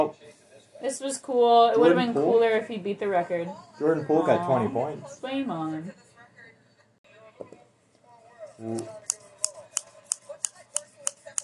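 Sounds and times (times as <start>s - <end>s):
speech: 0.8s - 6.0s, 8.6s - 9.1s
scissors snipping with crisp metallic cuts: 8.7s - 11.4s.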